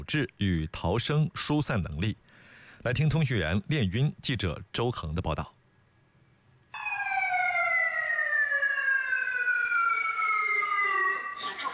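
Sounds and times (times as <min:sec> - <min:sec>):
speech: 0:00.0 - 0:05.6
fire alarm wailing inside a building during a fire evacuation drill: 0:06.7 - 0:11.7.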